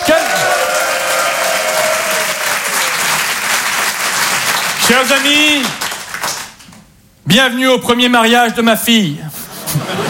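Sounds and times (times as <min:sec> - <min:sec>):
audience applause: 0:00.0 - 0:06.8
speech: 0:04.9 - 0:05.8, 0:07.2 - 0:09.4
laughter: 0:09.5 - 0:10.0.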